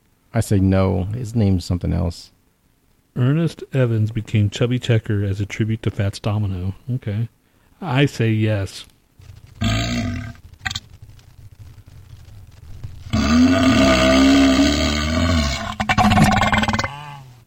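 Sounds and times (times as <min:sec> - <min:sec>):
speech: 0:00.4 - 0:02.4, 0:03.2 - 0:08.9
loud burp: 0:09.6 - 0:10.4, 0:13.1 - 0:17.4.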